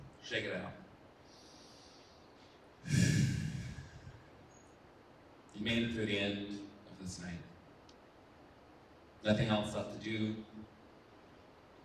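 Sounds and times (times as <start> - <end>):
speech: 0.3 - 0.8, 5.6 - 7.5, 9.2 - 10.8
deep breath in through the nose and out: 1.2 - 4.2.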